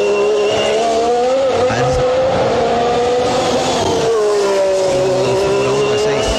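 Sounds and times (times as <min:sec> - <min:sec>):
V6 engine revving hard: 0:00.0 - 0:06.3.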